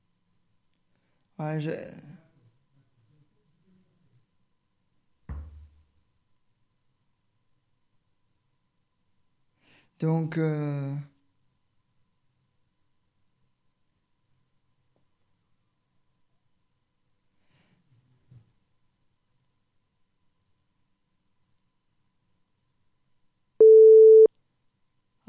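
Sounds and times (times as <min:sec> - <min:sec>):
speech: 0:01.4 - 0:02.1, 0:10.0 - 0:11.1
telephone busy tone after a call is cut off: 0:23.6 - 0:24.3.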